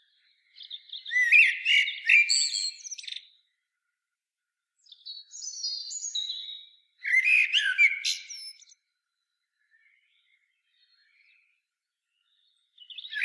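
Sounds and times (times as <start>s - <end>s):
common blackbird song, Turdus merula: 0.0s - 3.9s, 4.7s - 13.2s.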